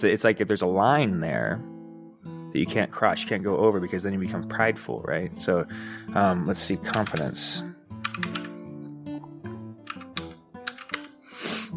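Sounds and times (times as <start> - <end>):
speech: 0.0 - 1.8, 2.5 - 8.4
typing on a computer keyboard: 6.9 - 7.4, 8.0 - 8.6, 9.9 - 11.2.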